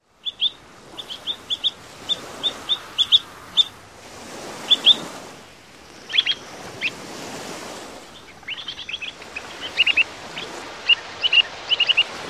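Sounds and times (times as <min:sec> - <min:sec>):
foraging calls: 0:00.2 - 0:12.2.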